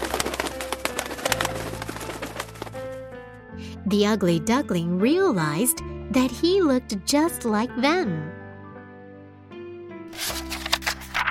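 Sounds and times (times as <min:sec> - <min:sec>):
flock of birds flapping wings landing on a pond: 0:00.0 - 0:03.0
speech: 0:03.8 - 0:08.4.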